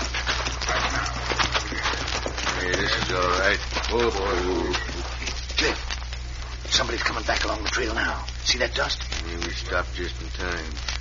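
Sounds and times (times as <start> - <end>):
horses' hooves clip-clopping as horses are led away: 0.0 - 8.1
low hum: 0.0 - 10.9
speech: 3.1 - 4.9, 5.6 - 5.9, 6.8 - 10.9.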